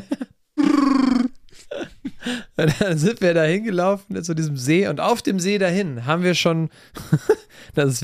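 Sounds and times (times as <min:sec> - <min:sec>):
voice imitating a Wookiee growl: 0:00.6 - 0:01.4
speech: 0:02.3 - 0:08.0.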